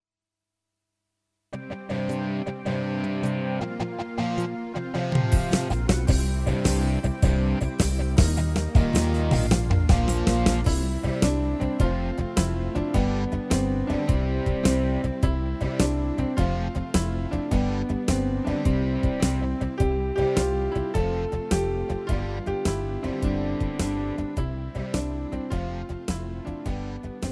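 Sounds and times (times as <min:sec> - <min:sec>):
instrumental music: 0:01.6 - 0:27.3.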